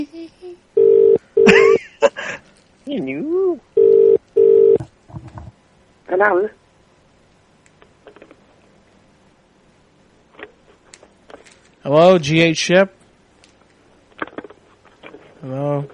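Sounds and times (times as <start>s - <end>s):
small noises: 0.0s - 15.9s
telephone call ring pulses on the line: 0.8s - 1.7s, 3.8s - 4.8s
speech: 6.2s - 6.6s, 11.9s - 13.0s.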